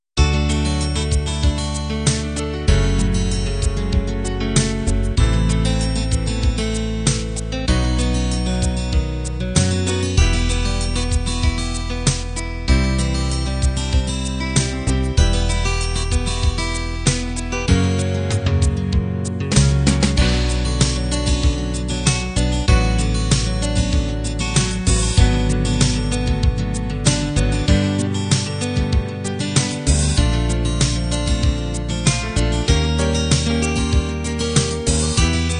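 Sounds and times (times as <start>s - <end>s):
folk ballad: 0.2s - 35.5s.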